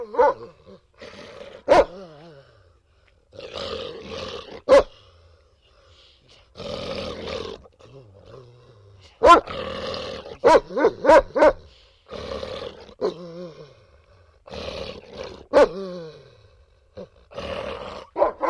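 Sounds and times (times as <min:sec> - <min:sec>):
dog barking: 0:00.0 - 0:00.6, 0:01.6 - 0:02.1, 0:04.6 - 0:05.0, 0:09.2 - 0:09.6, 0:10.3 - 0:11.7, 0:15.5 - 0:15.8, 0:18.1 - 0:18.4
dog growling: 0:00.0 - 0:02.7, 0:03.3 - 0:05.0, 0:06.5 - 0:18.4.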